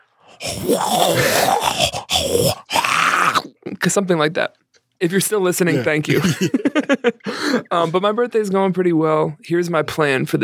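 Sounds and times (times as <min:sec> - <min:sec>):
human voice imitating a pug's snorting grunt: 0:00.3 - 0:03.5
speech: 0:00.4 - 0:01.5, 0:03.8 - 0:10.4
laughter: 0:05.7 - 0:08.0.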